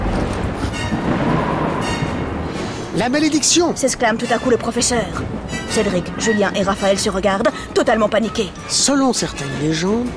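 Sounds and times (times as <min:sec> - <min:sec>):
sudden thunderstorm rumble with strong wind: 0:00.0 - 0:07.8
speech: 0:03.0 - 0:10.1.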